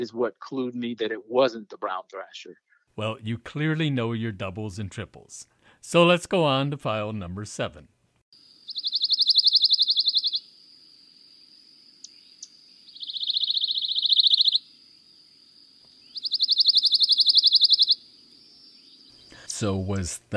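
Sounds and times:
speech: 0.0 - 8.0, 19.6 - 20.3
faint hiss: 0.0 - 20.3
pine warbler dry trill song: 8.4 - 10.5, 12.0 - 14.7, 15.8 - 19.8.

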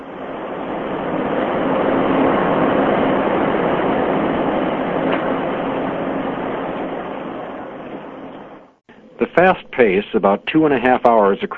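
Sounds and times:
churning wake of a high-speed catamaran ferry on Lake Michigan: 0.0 - 8.6
250-passenger high-speed catamaran ferry engines rumbling on Lake Michigan: 0.0 - 11.5
speech: 9.4 - 11.5.

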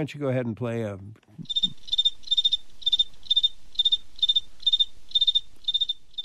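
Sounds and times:
speech: 0.0 - 1.6
cricket chirping: 1.4 - 6.2.

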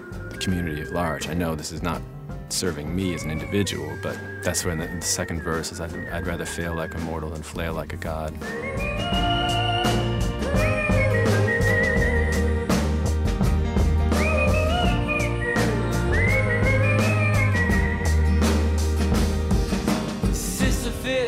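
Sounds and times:
bright melodic whistled tune: 0.0 - 1.9, 2.6 - 12.9, 14.0 - 18.6
speech: 0.4 - 9.4
band backing with bass and percussion: 4.9 - 21.1.

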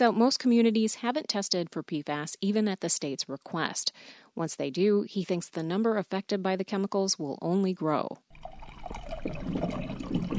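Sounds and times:
speech: 0.0 - 10.0
water poured into a glass from a water dispenser: 8.3 - 10.3.

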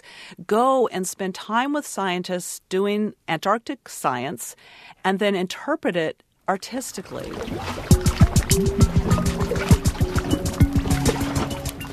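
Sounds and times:
speech: 0.3 - 8.0, 8.6 - 9.0
glacier meltwater dripping in Antarctica: 7.3 - 11.9.

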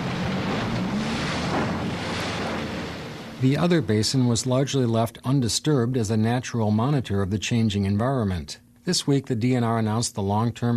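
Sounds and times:
rushing water on Little Rock Lake: 0.0 - 4.4
research boat engine humming on Little Rock Lake: 0.0 - 10.7
wind on Little Rock Lake: 0.0 - 10.7
speech: 3.4 - 10.7.

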